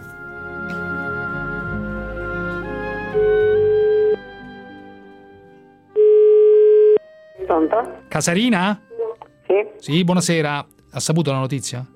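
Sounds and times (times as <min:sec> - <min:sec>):
music: 0:00.0 - 0:06.2, 0:07.0 - 0:11.9
ringback tone of an outgoing telephone call: 0:03.2 - 0:04.2, 0:05.9 - 0:07.0
speech: 0:07.7 - 0:08.9, 0:09.8 - 0:11.9.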